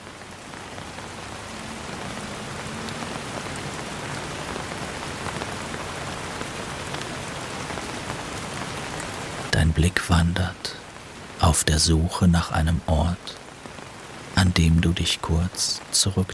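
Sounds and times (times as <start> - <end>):
heavy rain striking a hard surface: 0.0 - 16.3
speech: 9.6 - 10.8, 11.5 - 13.4, 14.4 - 16.3.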